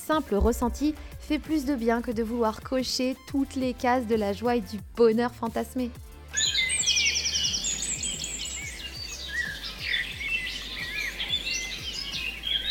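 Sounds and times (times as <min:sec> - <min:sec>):
speech: 0:00.1 - 0:06.1
birds chirping and singing: 0:06.3 - 0:12.7.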